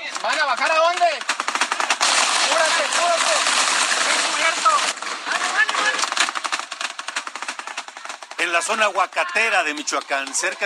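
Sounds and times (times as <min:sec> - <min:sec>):
speech: 0:00.2 - 0:01.0, 0:08.5 - 0:10.6
heavy-calibre gunfire during an armed clash in Michoacán, Mexico: 0:01.1 - 0:08.9.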